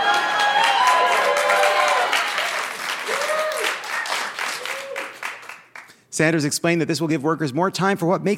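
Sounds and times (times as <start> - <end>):
audience cheers and whoops: 0.0 - 5.3
audience applauding: 0.0 - 5.9
speech: 6.2 - 8.3.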